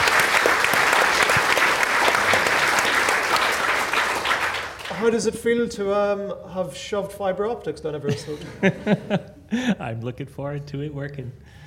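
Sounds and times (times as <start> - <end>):
room full of people clapping: 0.0 - 5.1
speech: 5.0 - 11.6
laughter: 8.0 - 9.8.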